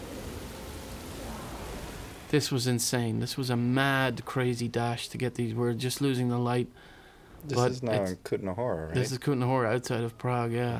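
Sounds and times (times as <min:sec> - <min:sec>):
heavy special-effects rain pouring over a film set: 0:00.0 - 0:03.9
speech: 0:02.3 - 0:10.7.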